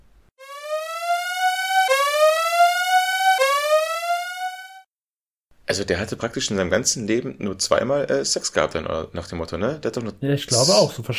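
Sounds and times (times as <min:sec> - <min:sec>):
electronic siren whooping: 0:00.4 - 0:04.8
speech: 0:05.7 - 0:11.1.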